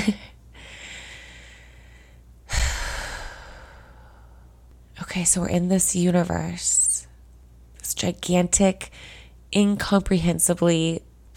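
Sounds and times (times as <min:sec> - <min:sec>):
slow deep breath with airy inhale and rushing exhale: 0:00.6 - 0:04.6, 0:08.9 - 0:09.4
speech: 0:05.2 - 0:06.9, 0:08.0 - 0:11.1.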